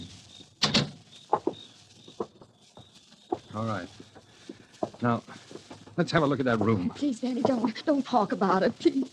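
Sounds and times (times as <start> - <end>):
door being unlocked and opened: 0.6 - 1.0
speech: 3.5 - 4.1, 5.0 - 5.4, 6.0 - 9.1.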